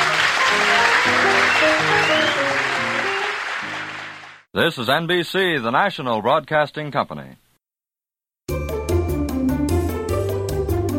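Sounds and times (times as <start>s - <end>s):
band music: 0.0s - 4.3s, 8.5s - 10.9s
studio audience applauding: 0.0s - 4.5s
speech: 4.5s - 7.4s.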